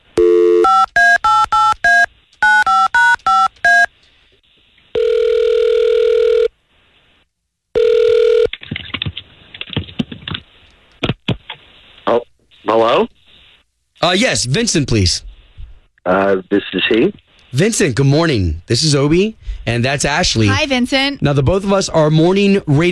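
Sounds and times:
long steady telephone ringing tones on the line: 0.2s - 3.9s, 5.0s - 6.5s, 7.8s - 8.5s
touch-tone beeps as a telephone number is dialed: 0.2s - 3.9s
speech: 12.8s - 13.1s, 14.0s - 15.3s, 16.0s - 22.9s.

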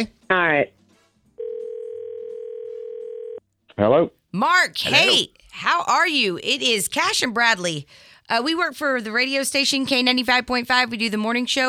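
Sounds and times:
speech: 0.0s - 0.8s, 3.8s - 11.6s
telephone dial tone: 1.4s - 3.4s.

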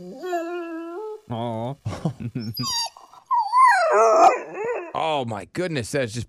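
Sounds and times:
dog whimpering: 0.0s - 1.3s, 2.4s - 5.0s
speech: 1.3s - 2.9s, 3.9s - 6.2s.

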